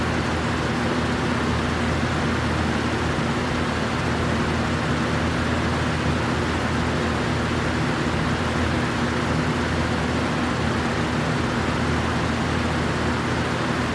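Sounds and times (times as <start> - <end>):
fan whirring: 0.0 - 13.9.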